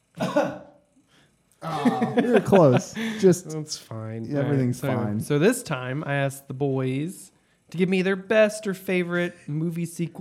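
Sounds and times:
single loud cough: 0.2s - 0.8s
laughter: 1.6s - 3.6s
speech: 1.8s - 10.2s.

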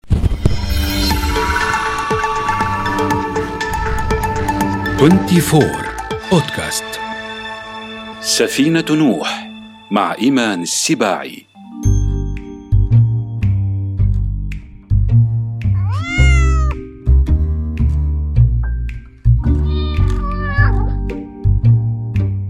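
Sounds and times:
steady rhythmic music: 0.7s - 22.4s
speech: 5.0s - 7.0s, 8.3s - 11.5s
cat meowing: 15.8s - 16.8s, 19.5s - 21.0s.

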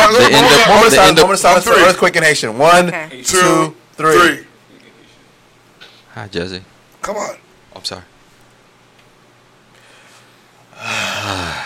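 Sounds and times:
speech: 0.2s - 4.5s, 6.2s - 8.1s
heavy noisy exhale or gasp: 9.8s - 11.6s.

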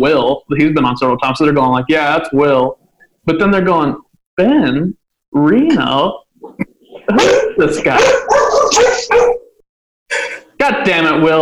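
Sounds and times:
speech: 0.0s - 9.3s, 10.1s - 11.4s
dogs barking: 6.5s - 9.6s.

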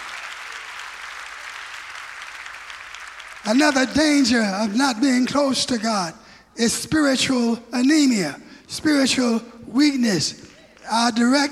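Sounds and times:
congregation clapping hands: 0.0s - 6.4s, 10.1s - 11.5s
speech: 3.4s - 11.5s.

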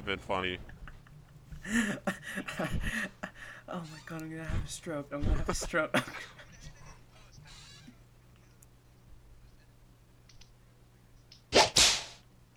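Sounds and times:
speech: 0.0s - 0.8s, 1.6s - 6.4s
laughter: 0.0s - 8.6s
sharp whip crack sound effect: 11.5s - 12.2s.

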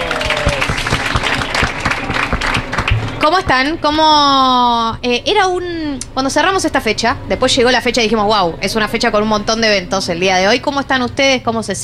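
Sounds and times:
studio audience applause: 0.0s - 3.2s
speech: 3.2s - 11.8s.

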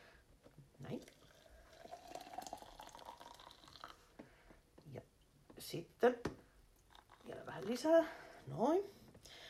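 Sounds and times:
speech: 0.8s - 1.1s, 5.7s - 6.3s, 7.6s - 9.4s
water poured into the narrow tube of a coffee brewer: 1.0s - 4.1s, 6.9s - 7.9s.

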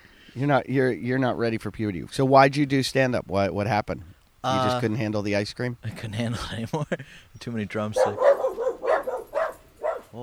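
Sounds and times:
speech: 0.4s - 8.4s
dog barking: 8.0s - 10.2s.

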